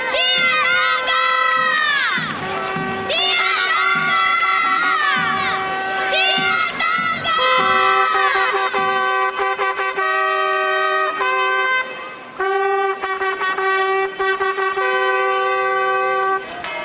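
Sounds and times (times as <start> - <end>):
drums: 0.0 - 10.2
crowd of children shouting and cheering: 0.0 - 11.3
many trumpets blaring and tooting: 0.0 - 16.8.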